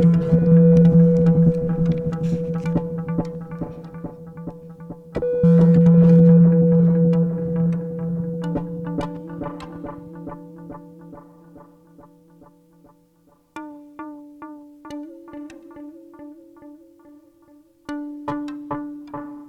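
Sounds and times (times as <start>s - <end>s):
crackling clicks and pops: 0.0s - 6.3s
synthesizer hooked up to a giant rose quartz crystal droning: 0.0s - 13.2s.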